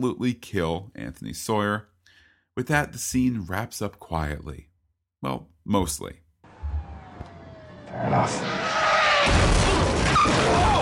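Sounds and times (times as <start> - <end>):
speech: 0.0 - 1.9, 2.6 - 6.2, 7.9 - 9.5
tires screeching: 6.5 - 10.8
car crash with grinding metal and debris: 8.1 - 10.8.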